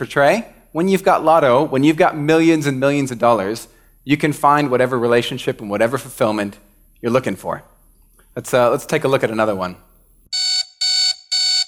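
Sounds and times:
speech: 0:00.0 - 0:07.7, 0:08.4 - 0:10.4
loud buzzy electronic alarm beeps: 0:10.3 - 0:11.6.

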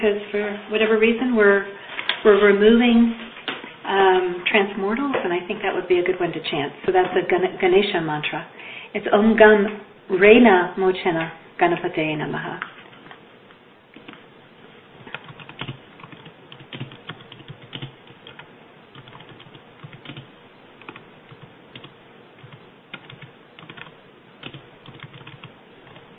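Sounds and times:
speech: 0:00.0 - 0:03.3, 0:03.9 - 0:12.7
computer keyboard typing a message into a chat box: 0:15.0 - 0:26.1.

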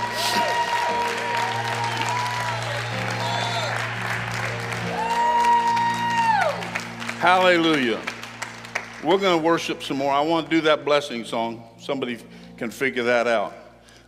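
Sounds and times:
worship audience shouting and whooping: 0:00.0 - 0:04.1, 0:04.8 - 0:06.8
worship audience clapping hands: 0:00.0 - 0:10.4
sustained organ-like music: 0:00.0 - 0:14.0
speech: 0:07.2 - 0:08.1, 0:09.0 - 0:13.6.

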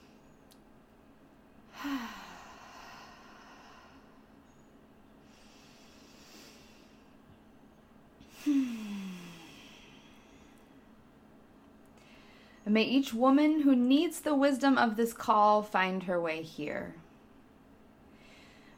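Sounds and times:
deep breathing inhaling through the nose and exhaling: 0:01.7 - 0:04.4, 0:05.2 - 0:07.2, 0:08.2 - 0:10.9, 0:12.0 - 0:12.6, 0:18.1 - 0:18.7
speech: 0:12.7 - 0:17.0.

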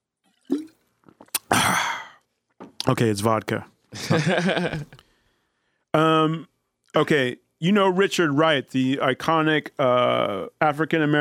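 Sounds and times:
person sipping a drink outdoors on a hot day: 0:00.3 - 0:02.3
small swallowing clicks: 0:00.5 - 0:01.5
speech: 0:02.9 - 0:05.0, 0:06.0 - 0:11.1
laughter: 0:04.0 - 0:05.0.

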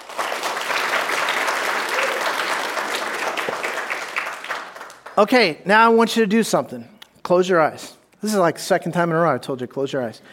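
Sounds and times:
large crowd audience applause: 0:00.0 - 0:05.3
speech: 0:05.2 - 0:10.3.

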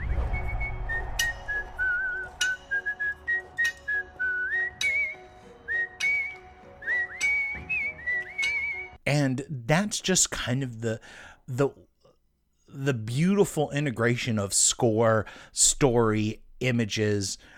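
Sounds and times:
man whistling a movie theme melody: 0:00.1 - 0:09.0
speech: 0:09.1 - 0:11.9, 0:12.7 - 0:17.5.

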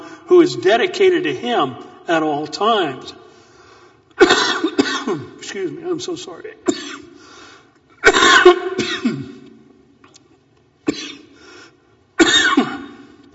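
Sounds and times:
speech: 0:00.3 - 0:03.2, 0:04.2 - 0:07.0
person coughing: 0:04.2 - 0:05.4, 0:06.6 - 0:07.2, 0:08.0 - 0:09.5, 0:10.8 - 0:11.4, 0:12.2 - 0:13.2.

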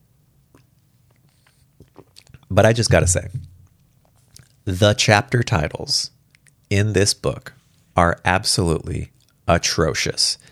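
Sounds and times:
low steady hum: 0:00.0 - 0:10.4
sipping tea with wet slurping and swallowing: 0:00.5 - 0:04.6
speech: 0:02.5 - 0:03.4, 0:04.7 - 0:10.4.

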